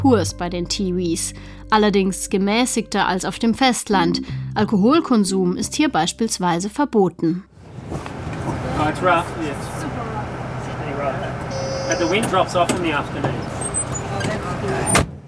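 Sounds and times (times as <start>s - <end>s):
speech: 0.0s - 8.1s, 8.8s - 9.7s, 11.9s - 13.5s
bus engine drone: 7.6s - 15.2s
indistinct voices murmuring in a bus: 8.4s - 15.0s.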